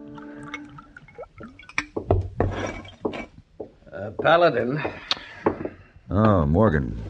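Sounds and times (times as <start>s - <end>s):
drink poured from a bottle into a glass at a bar: 0.0s - 3.1s
glasses clinking at a bar: 0.2s - 3.4s
speech: 4.0s - 5.1s, 6.1s - 7.0s.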